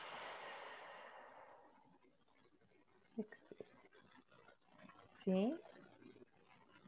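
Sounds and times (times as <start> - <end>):
deep inhale and exhale: 0.0 - 1.8
speech: 3.2 - 3.5, 5.2 - 5.7.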